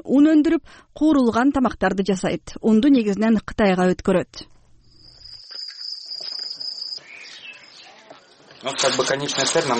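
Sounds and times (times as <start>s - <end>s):
speech: 0.1s - 4.5s, 8.6s - 9.7s
fainter busy insect noise: 4.8s - 9.7s
many crickets chirping at a cricket farm in Kyrgyzstan: 4.8s - 9.7s.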